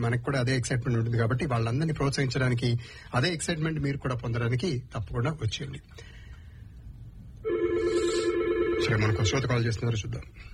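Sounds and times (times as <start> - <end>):
speech: 0.0 - 6.2, 8.8 - 10.5
telephone ringing for an incoming call: 7.4 - 9.6.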